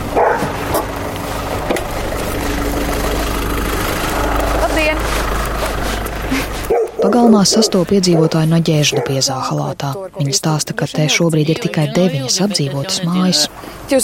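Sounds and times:
rumbling engine idling: 0.0s - 14.0s
fierce chained dog barking at an old fieldstone house: 0.1s - 0.8s, 6.6s - 9.4s
speech: 7.2s - 14.0s.

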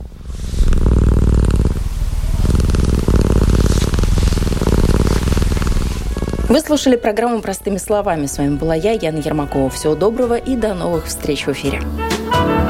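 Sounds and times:
domestic cat purring: 0.0s - 11.8s
speech: 6.5s - 12.6s.

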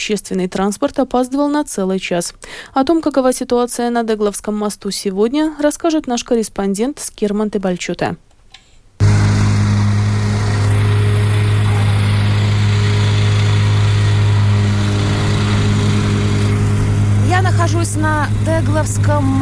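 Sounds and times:
speech: 0.0s - 8.3s, 17.6s - 19.4s
excavator diesel engine droning during road repair works on the Teglovsky Bridge: 9.0s - 19.4s
traffic: 9.0s - 19.4s.

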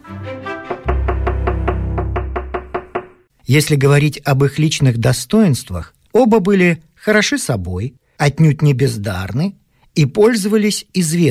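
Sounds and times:
sharp knocks on a door: 0.7s - 3.3s
speech: 3.5s - 11.2s.

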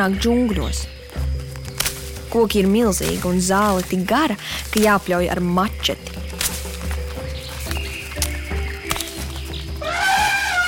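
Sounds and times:
speech: 0.0s - 1.4s, 2.3s - 6.2s
bright tropical bird chirps and trills: 0.0s - 10.6s
elephants trumpeting in the distance in a jungle: 9.6s - 10.6s.

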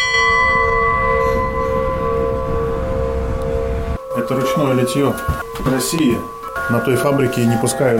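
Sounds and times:
golden hand-cast church bells ringing in an Old Believer church narthex: 0.0s - 7.9s
low rumbling background: 0.3s - 6.6s
speech: 4.3s - 7.9s.

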